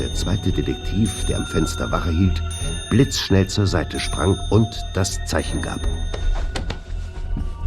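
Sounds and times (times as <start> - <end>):
speech: 0.0 - 6.6
wall clock in a studio striking five with metallic chimes: 0.0 - 7.0.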